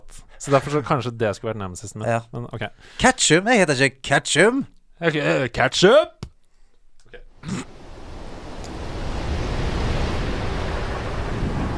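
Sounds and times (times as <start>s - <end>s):
speech: 0.1s - 6.2s
stormy ocean waves crashing: 7.6s - 11.7s.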